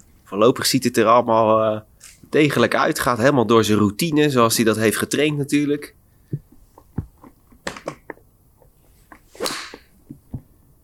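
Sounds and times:
speech: 0.3 - 6.4
golf club whooshing through a swing: 9.3 - 10.0
golf club striking a ball: 9.4 - 10.0.

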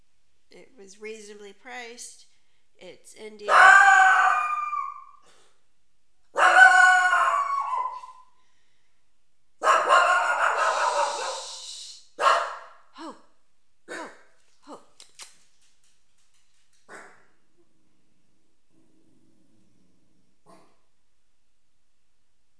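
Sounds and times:
speech: 0.8 - 4.2
dog barking and howling: 3.5 - 4.5, 6.3 - 8.2, 9.6 - 11.4, 12.2 - 12.8, 13.9 - 14.3, 16.9 - 17.3, 20.5 - 20.8.

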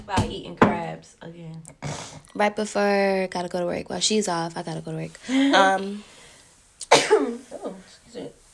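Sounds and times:
speech: 0.1 - 6.2
person sneezing: 1.8 - 2.3, 6.8 - 7.4.

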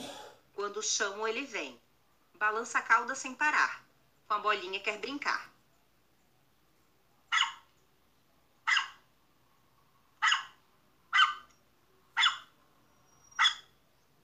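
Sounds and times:
speech: 0.7 - 1.8, 2.4 - 5.5
dog barking in short sharp yaps: 7.3 - 7.7, 8.6 - 9.0, 10.2 - 11.5, 12.1 - 12.6, 13.3 - 13.7.

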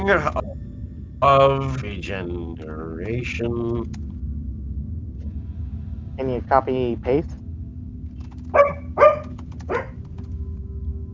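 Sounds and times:
speech: 0.0 - 0.6, 1.2 - 4.1, 6.2 - 7.4
steady low hum: 0.0 - 11.1
dog barking sharply: 8.5 - 10.0.

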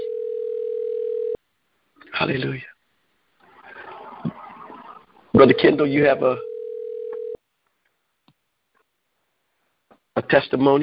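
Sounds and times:
phone ringing during a church service: 0.0 - 1.4, 6.4 - 7.4
speech: 2.2 - 2.8, 5.4 - 6.5, 10.3 - 10.8.

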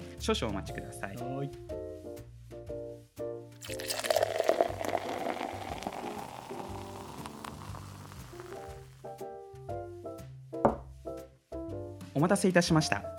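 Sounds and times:
soft music: 0.0 - 13.1
speech: 0.2 - 1.8, 12.2 - 13.1
light fizzing of pale ale: 3.6 - 9.1
pale ale pouring into a pint glass in Karuizawa Japan: 3.6 - 9.2.

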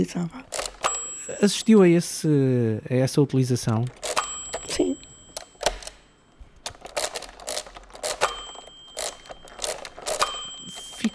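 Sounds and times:
speech: 0.0 - 0.5, 1.3 - 4.0
hand-cranked mechanical calculating machine clattering: 0.5 - 2.0, 3.6 - 6.0, 6.6 - 11.1.

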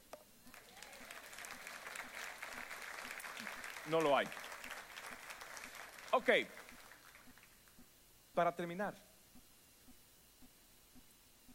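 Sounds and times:
crowd clapping: 0.5 - 7.6
speech: 3.9 - 4.4, 6.2 - 6.6, 8.4 - 9.0.

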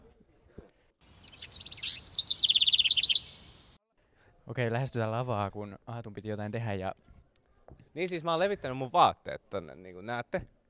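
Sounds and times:
recorded birdsong played in a men's restroom: 1.0 - 3.8
speech: 4.5 - 10.6.

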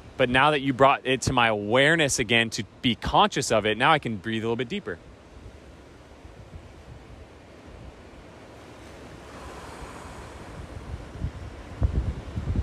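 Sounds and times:
ocean waves on the shore: 0.0 - 12.6
speech: 0.2 - 5.1
wind buffeting: 5.4 - 12.6.

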